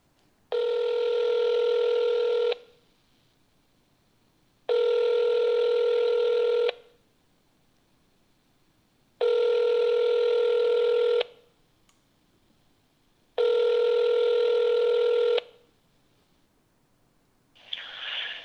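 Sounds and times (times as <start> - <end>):
phone ringback tone: 0.5 - 2.7, 4.7 - 6.8, 9.2 - 11.3, 13.4 - 15.5.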